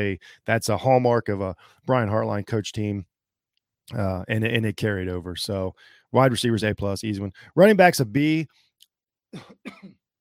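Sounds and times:
speech: 0:00.0 - 0:03.1, 0:03.9 - 0:08.6, 0:09.3 - 0:10.0
raspy coughs with throat clearing: 0:09.3 - 0:10.1.

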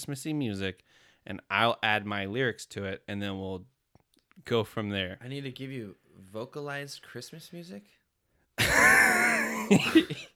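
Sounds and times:
speech: 0:00.0 - 0:03.7, 0:04.4 - 0:08.0, 0:09.7 - 0:10.3
cough mixed with laughter: 0:08.6 - 0:10.3.

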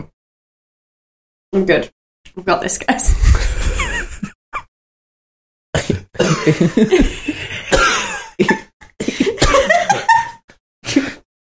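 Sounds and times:
speech: 0:01.6 - 0:03.8, 0:06.4 - 0:07.5, 0:08.4 - 0:08.6
laughter: 0:03.4 - 0:04.3, 0:06.2 - 0:07.7, 0:08.4 - 0:10.4
coughing fit: 0:05.8 - 0:06.6, 0:07.6 - 0:10.2.

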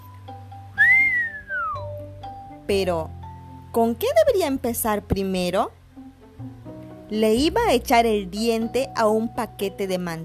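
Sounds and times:
animal standing on its hind legs whistling: 0:00.8 - 0:01.9
speech: 0:02.7 - 0:05.8, 0:07.1 - 0:10.2.

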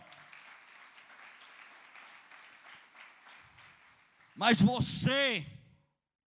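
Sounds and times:
crowd applauding: 0:00.0 - 0:05.4
speech: 0:04.4 - 0:05.6.

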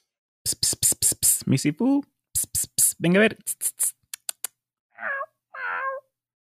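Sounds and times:
speech: 0:01.5 - 0:02.2, 0:03.0 - 0:03.7
man imitating a cat meowing: 0:05.0 - 0:06.1.

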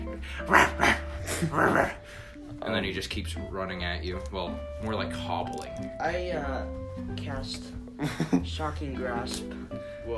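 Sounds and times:
speech: 0:00.2 - 0:10.1
voice imitating a goblin barking: 0:00.4 - 0:02.0.

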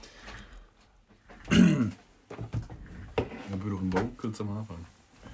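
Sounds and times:
person clearing throat: 0:01.4 - 0:02.1
speech: 0:03.9 - 0:04.9.

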